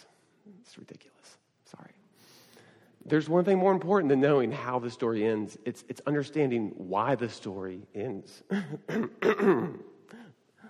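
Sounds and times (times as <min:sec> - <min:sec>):
speech: 0:00.6 - 0:02.0, 0:03.1 - 0:10.2
person clearing throat: 0:08.5 - 0:10.0
person coughing: 0:08.5 - 0:10.4.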